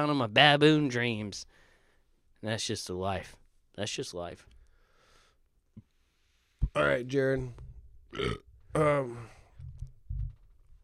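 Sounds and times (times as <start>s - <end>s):
speech: 0.0s - 1.6s, 2.4s - 4.5s, 6.8s - 9.4s
faint low thuds: 6.6s - 6.8s, 9.4s - 10.8s
person burping: 8.1s - 9.4s.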